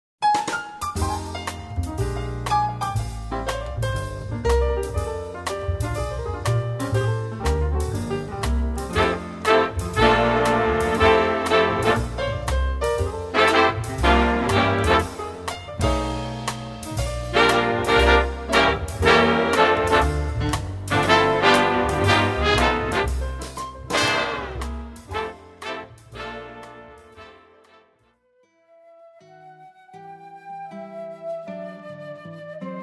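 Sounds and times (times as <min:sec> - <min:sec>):
swing Christmas music: 0:00.2 - 0:28.0.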